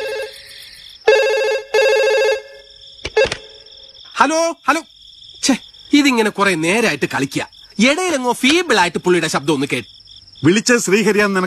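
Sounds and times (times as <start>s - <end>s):
telephone ringing at an old family house: 1.1s - 2.6s
speech: 4.2s - 11.4s.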